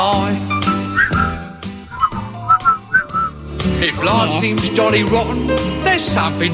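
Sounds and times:
rhythmic backing music with steady beats: 0.0 - 6.5
person whistling a short bouncy melody: 0.7 - 3.4
speech: 4.0 - 6.5.

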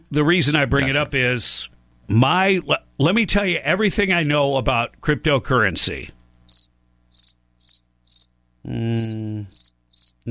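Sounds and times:
speech: 0.1 - 6.2, 8.7 - 9.6
crickets chirping: 6.5 - 8.3, 9.0 - 10.2.

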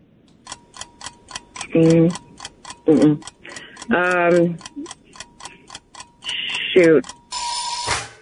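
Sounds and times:
rapid ticking quiz countdown: 0.3 - 7.8
people speaking: 1.6 - 2.2, 2.9 - 5.0, 6.3 - 7.1
loud harsh quiz time-up buzzer: 7.3 - 8.2.

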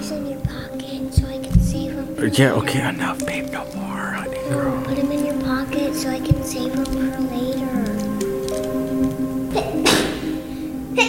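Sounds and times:
steady tonal hum: 0.0 - 11.0
speech: 2.2 - 3.8, 4.5 - 5.2
child sneezing: 9.5 - 11.0.

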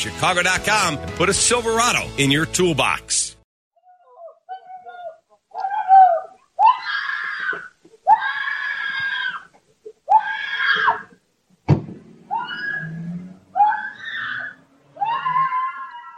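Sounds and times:
speech: 0.0 - 3.4
woman screaming after being attacked and robbed in front of her home in Chicago: 3.8 - 9.5, 10.1 - 11.2, 12.3 - 16.1
sharp thud: 11.7 - 12.2.

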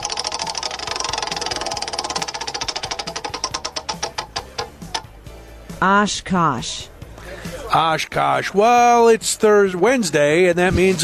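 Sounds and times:
prize wheel spinning with ratcheting clicks: 0.0 - 5.1
speech: 5.8 - 6.9, 7.7 - 11.0.

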